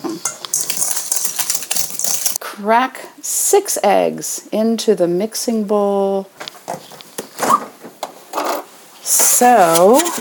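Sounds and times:
metal kitchen utensils clattering as someone rummages for a whisk: 0:00.2 - 0:02.4, 0:08.4 - 0:10.1
speech: 0:02.6 - 0:06.6, 0:09.4 - 0:10.1.

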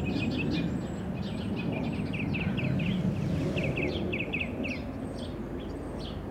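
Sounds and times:
song sparrow calling outdoors: 0:00.0 - 0:06.2
steady loud rumbling noise: 0:00.0 - 0:06.3.

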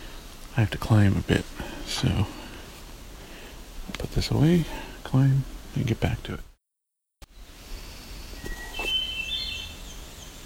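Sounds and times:
outdoor noise: 0:00.0 - 0:06.6, 0:07.2 - 0:10.4
speech: 0:00.6 - 0:02.4, 0:04.2 - 0:06.5
American Redstart singing: 0:07.2 - 0:10.4.

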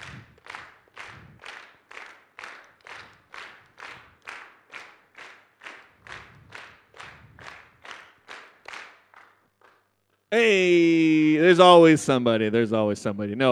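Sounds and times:
audience clapping in unison on beat: 0:00.0 - 0:10.3
speech: 0:10.3 - 0:13.4.

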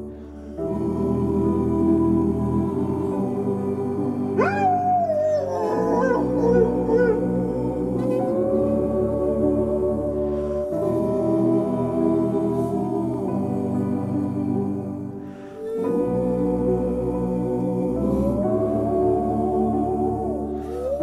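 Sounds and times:
dense instrumental song backing: 0:00.0 - 0:21.0
dog howling in a song: 0:04.4 - 0:08.3.

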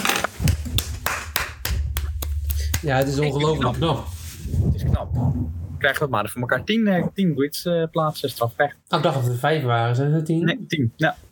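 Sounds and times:
steady rhythmic hand clapping: 0:00.1 - 0:03.4
low rumble: 0:00.2 - 0:08.5
speech: 0:02.8 - 0:04.2, 0:04.8 - 0:11.2.

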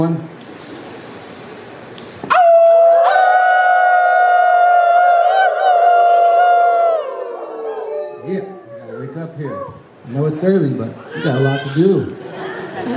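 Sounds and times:
speech: 0:00.0 - 0:00.3, 0:10.1 - 0:12.2
group of people howling: 0:02.3 - 0:09.9.

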